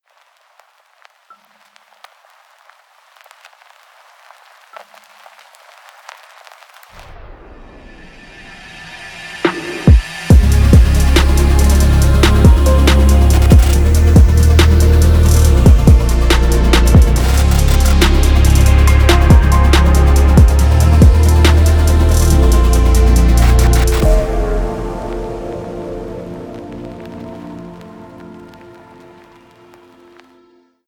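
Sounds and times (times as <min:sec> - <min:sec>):
cinematic music: 0:07.0 - 0:30.7.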